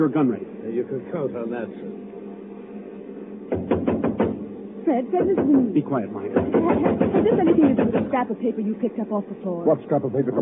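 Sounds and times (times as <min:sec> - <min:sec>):
speech: 0:00.0 - 0:02.1, 0:04.9 - 0:10.4
soft low hum: 0:00.0 - 0:10.4
rapping on a door: 0:03.5 - 0:04.5, 0:05.1 - 0:08.2.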